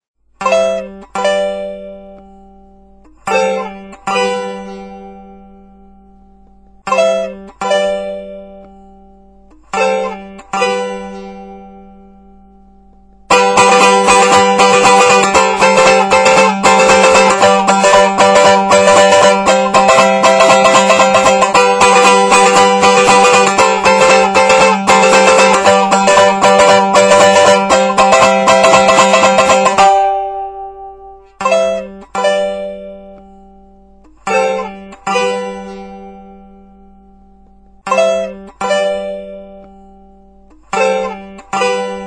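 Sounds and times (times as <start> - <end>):
strumstick broken strum: 0.4 - 42.0.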